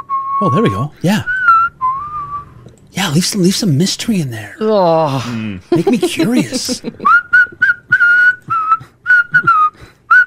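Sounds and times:
person whistling a quick choppy tune: 0.0s - 2.6s, 7.0s - 10.2s
speech: 0.4s - 1.4s, 3.0s - 7.2s
laughter: 5.2s - 7.1s.

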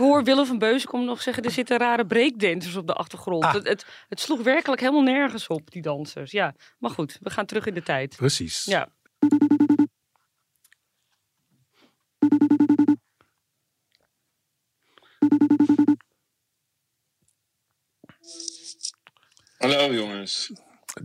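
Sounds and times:
speech: 0.0s - 9.9s, 12.2s - 12.7s, 19.6s - 21.0s
telephone ringing tone as a phone call is placed: 9.2s - 9.9s, 12.2s - 13.0s, 15.2s - 16.0s.

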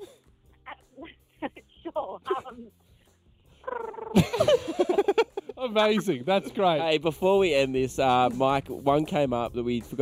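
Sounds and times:
person imitating a cat meowing: 3.6s - 4.2s
laughter: 3.7s - 7.1s
speech: 5.8s - 10.0s.

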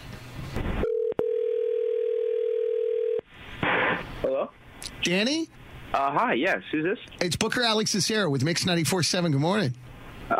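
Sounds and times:
telephone dial tone of outgoing call: 0.8s - 3.2s
speech: 4.4s - 10.3s.

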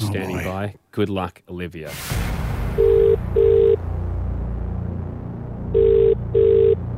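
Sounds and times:
speech: 0.1s - 2.9s
phone line ringing out on an outgoing call to a mobile phone: 2.8s - 3.8s, 5.8s - 6.8s.

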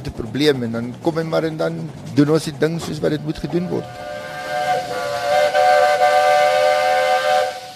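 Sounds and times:
low rumble of train arriving from the Cape: 0.0s - 7.7s
speech: 0.1s - 4.2s
train whistle blowing: 3.6s - 7.7s.

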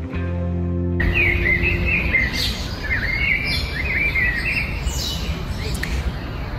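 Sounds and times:
birds chirping and trilling in a forest: 1.0s - 6.5s.

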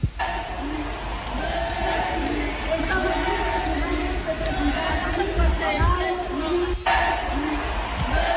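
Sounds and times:
dense murmur of cheering: 0.0s - 8.3s
large crowd in the stands chanting a player's name: 0.1s - 8.3s.

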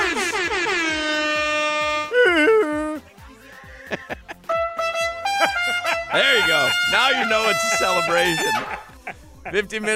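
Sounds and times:
air horn blasts: 0.0s - 2.2s, 4.4s - 8.8s
laughter: 2.1s - 9.9s
speech: 6.5s - 8.8s, 9.5s - 9.9s.

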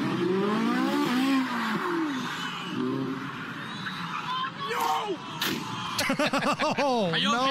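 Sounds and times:
Ferrari 458 sports car engine revving hard: 0.0s - 3.2s
roaring road noise: 0.0s - 7.4s
laughter: 6.0s - 7.4s
speech: 6.1s - 7.4s.

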